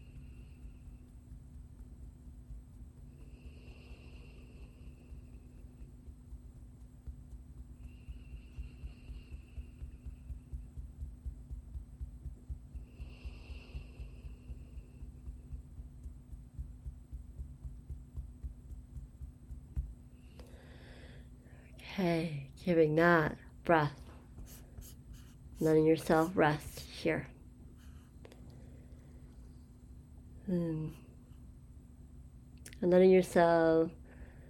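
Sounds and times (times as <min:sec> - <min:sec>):
slow natural heartbeat: 0:00.0 - 0:03.6, 0:04.6 - 0:20.2
speech: 0:22.0 - 0:24.0, 0:25.6 - 0:27.3, 0:32.8 - 0:34.0.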